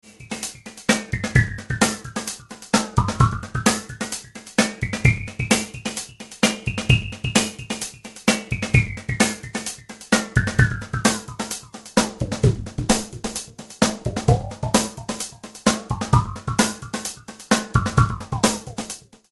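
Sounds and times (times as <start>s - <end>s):
drum loop with frequency sweep: 0.0s - 19.2s.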